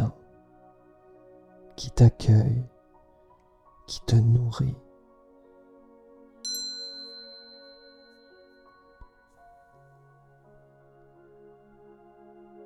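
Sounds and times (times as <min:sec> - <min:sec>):
speech: 0:01.9 - 0:02.7, 0:03.9 - 0:04.8
single bell ringing: 0:06.5 - 0:09.8.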